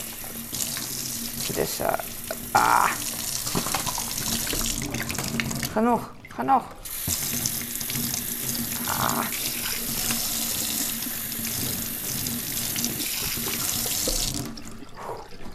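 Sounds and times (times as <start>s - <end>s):
water gushing from a tap into a bottle: 0.0s - 15.5s
speech: 1.5s - 3.8s, 5.8s - 6.8s
person murmuring: 2.5s - 3.0s, 8.8s - 9.8s.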